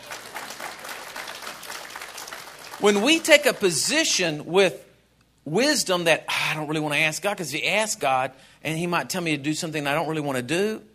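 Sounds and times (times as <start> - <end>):
audience clapping: 0.0 - 4.0
speech: 2.8 - 4.9, 5.5 - 10.9.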